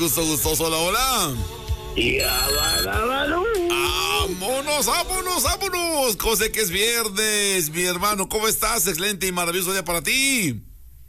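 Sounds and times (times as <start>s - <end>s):
speech: 0.0s - 10.7s
telephone ringing for an incoming call: 2.0s - 3.0s.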